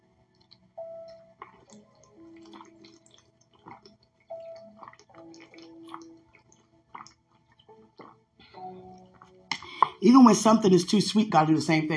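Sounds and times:
person gulping water: 0.3s - 10.0s
swallowing: 0.4s - 10.0s
louder slurp: 1.4s - 8.2s
speech: 10.0s - 11.9s.

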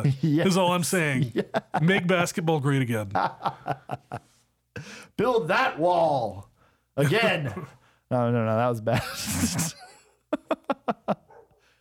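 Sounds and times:
laughter: 0.0s - 4.4s, 8.9s - 11.3s
speech: 0.0s - 11.2s
faint breathing: 4.4s - 5.2s, 6.5s - 7.0s, 7.8s - 8.1s, 11.5s - 11.7s
dog barking: 11.3s - 11.6s.

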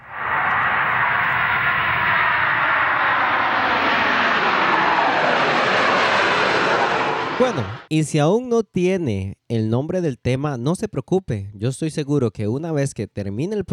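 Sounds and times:
airplane engine roar passing overhead: 0.0s - 7.9s
speech: 7.4s - 13.7s.

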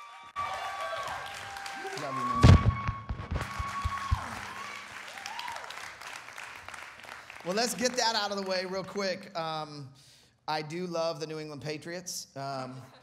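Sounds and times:
audience applause and cheering welcoming a pastor: 0.0s - 9.0s
speech: 2.0s - 2.4s, 7.4s - 13.0s.

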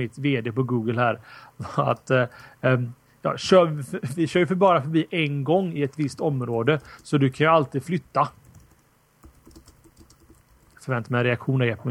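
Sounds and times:
speech: 0.0s - 8.4s, 10.8s - 11.8s
typing on a computer keyboard while chatting: 5.9s - 7.2s, 8.4s - 11.2s.

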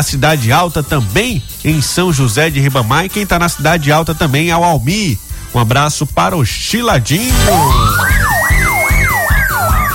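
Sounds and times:
speech: 0.0s - 8.2s
police car siren wailing: 7.2s - 9.9s.

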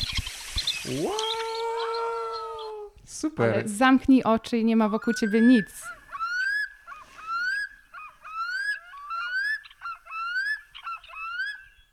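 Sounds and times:
loon calling: 0.8s - 3.0s, 4.7s - 11.9s
speech: 0.9s - 1.6s, 3.2s - 6.0s.

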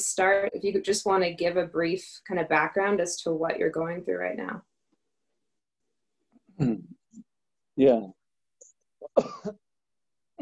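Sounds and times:
speech: 0.2s - 4.7s, 6.6s - 7.0s, 7.8s - 8.2s, 9.2s - 9.6s
strained painful cough with a rough throaty edge: 9.0s - 9.6s.

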